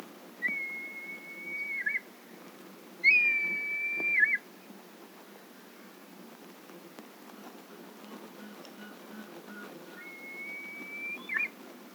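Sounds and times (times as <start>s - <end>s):
red kite piercing call: 0.4s - 2.0s, 3.0s - 4.4s, 9.5s - 11.6s.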